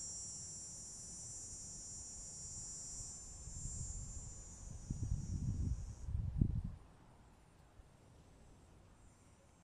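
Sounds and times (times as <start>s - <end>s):
cicada song buzzing drone: 0.0s - 6.2s
low rumbling wind noise in gusts: 3.4s - 6.8s.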